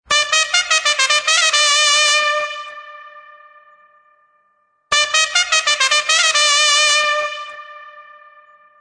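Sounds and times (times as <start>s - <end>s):
trumpet playing a duel: 0.1s - 3.9s, 4.9s - 8.7s.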